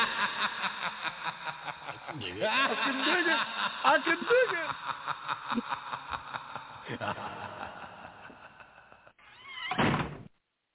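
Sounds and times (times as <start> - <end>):
voices in busy sound: 0.0 - 5.8
laughter: 0.0 - 9.2
door slamming shut: 9.6 - 10.3.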